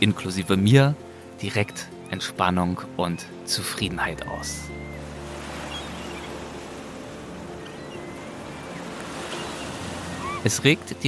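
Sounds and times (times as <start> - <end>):
speech: 0.0 - 4.8, 10.4 - 11.0
ocean surf roaring with low rumble: 4.0 - 10.6.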